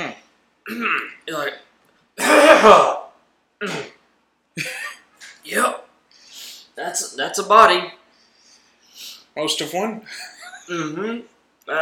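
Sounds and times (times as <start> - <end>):
speech: 0.7 - 1.6, 2.6 - 3.0, 7.2 - 8.0, 9.4 - 11.7
loud harsh coughs: 2.2 - 3.0, 3.6 - 4.0.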